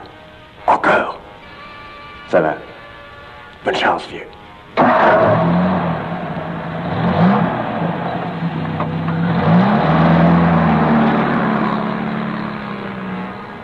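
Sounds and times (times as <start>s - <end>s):
speech: 2.3s - 2.7s, 3.6s - 5.6s
heavy truck engine rumbling and shifting gears while pulling away: 4.7s - 13.6s.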